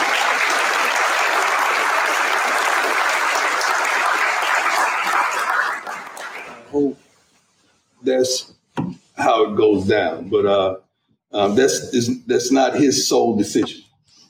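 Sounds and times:
crowd applauding: 0.0 - 6.8
speech: 8.2 - 8.5, 9.6 - 13.8.

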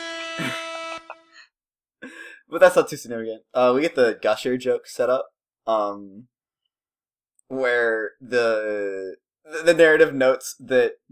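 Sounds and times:
air horn blast: 0.0 - 1.4
speech: 0.4 - 0.7, 2.5 - 6.3, 7.5 - 11.1.

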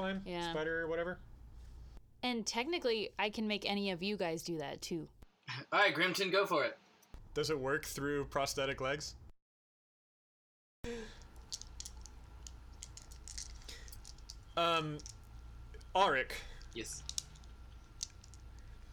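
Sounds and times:
speech: 0.0 - 1.3, 2.2 - 6.8, 7.4 - 9.2, 10.8 - 11.6, 14.6 - 15.2, 15.9 - 17.1
dice clicking and rattling in a hand: 11.3 - 15.3, 16.6 - 18.5.

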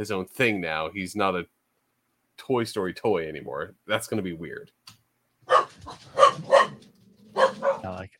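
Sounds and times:
speech: 0.0 - 1.6, 2.4 - 4.9, 7.8 - 8.1
dogs barking: 5.5 - 8.0.

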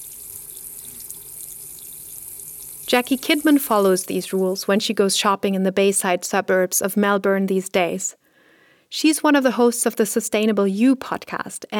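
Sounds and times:
water running from a tap into a sink while washing hands: 0.0 - 4.6
speech: 3.0 - 8.2, 8.9 - 11.7.

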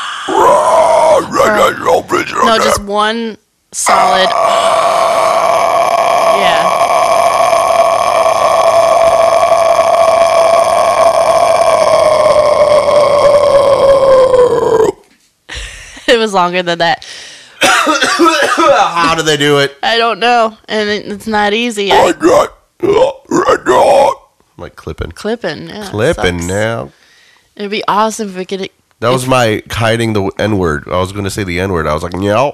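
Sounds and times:
person imitating a metal growl scream: 0.0 - 2.8, 3.8 - 15.0, 21.9 - 24.2
speech: 1.5 - 5.2, 16.3 - 17.3, 17.9 - 23.0, 24.6 - 27.0, 27.6 - 32.5.

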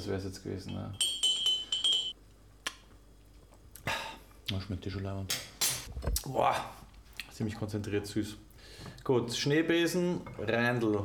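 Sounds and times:
speech: 0.0 - 1.1, 4.5 - 6.8, 7.4 - 11.0
glass jar clinking while being handled: 0.7 - 2.2.

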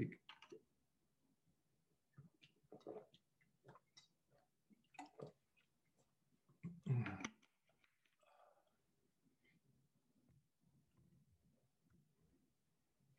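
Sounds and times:
speech: 0.0 - 0.2
water being poured for drinking: 2.4 - 5.7.

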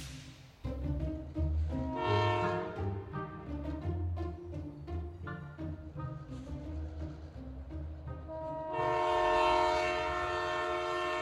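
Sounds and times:
train rumbling past: 0.5 - 11.2
loud train horn: 1.7 - 3.5, 8.2 - 11.2.

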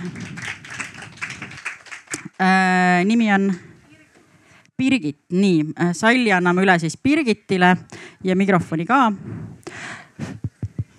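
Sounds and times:
crowd applause: 0.0 - 2.4
speech: 2.4 - 3.7, 4.8 - 9.5.

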